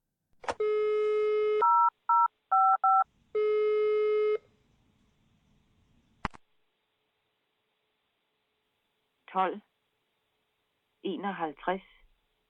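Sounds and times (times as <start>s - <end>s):
telephone dialing tones for a call to a talking clock: 0.6s - 4.4s
speech: 9.4s - 9.7s, 11.1s - 11.9s.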